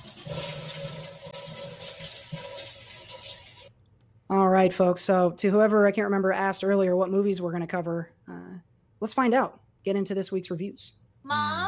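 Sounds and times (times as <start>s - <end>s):
toilet flushing: 0.0s - 3.7s
speech: 4.6s - 11.6s.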